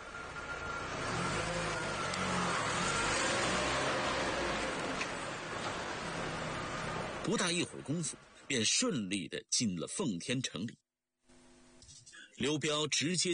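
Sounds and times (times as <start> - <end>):
broadband road noise: 0.0 - 8.5
car engine humming: 0.0 - 8.5
speech: 7.3 - 10.8, 12.4 - 13.3.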